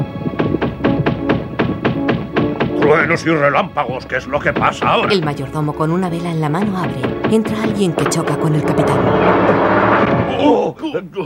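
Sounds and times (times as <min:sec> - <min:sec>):
knocking on a door: 0:00.0 - 0:03.2, 0:03.8 - 0:10.3
low tonal background: 0:00.0 - 0:10.7
speech: 0:02.9 - 0:11.2.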